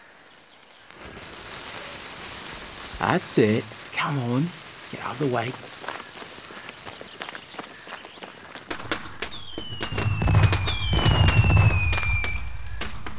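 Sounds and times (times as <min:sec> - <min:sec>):
fireworks crackling and popping: 0:00.5 - 0:13.1
speech: 0:03.0 - 0:05.8
fireworks high descending whistles: 0:08.7 - 0:13.1
deep rumbling boom of fireworks: 0:08.8 - 0:13.1.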